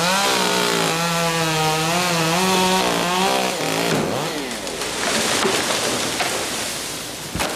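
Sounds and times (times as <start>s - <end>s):
chainsaw revving while cutting trees: 0.0s - 5.0s
tree crashing down into the undergrowth: 2.7s - 7.5s.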